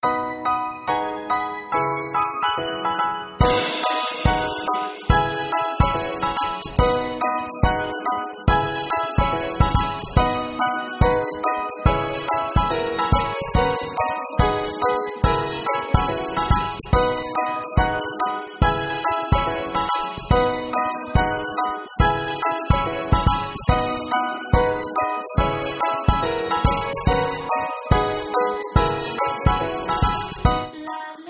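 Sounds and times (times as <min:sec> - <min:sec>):
instrumental jingle: 0:00.0 - 0:30.8.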